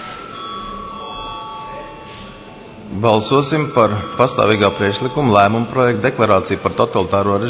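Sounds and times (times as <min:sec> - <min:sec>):
parliament chamber bell ringing before a vote: 0:00.0 - 0:06.8
faint room murmur: 0:00.0 - 0:07.4
speech: 0:02.9 - 0:07.4.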